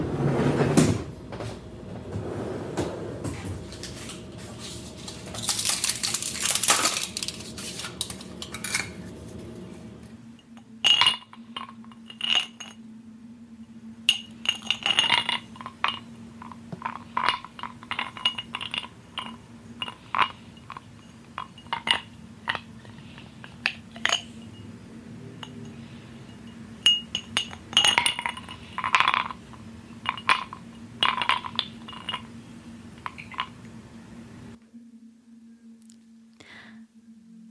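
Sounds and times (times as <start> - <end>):
steady low hum: 0.0 - 37.4
ice cube clinking against a glass during a mikveh ritual: 5.4 - 7.4, 10.9 - 12.8, 14.1 - 24.7, 26.9 - 32.3, 33.0 - 33.6.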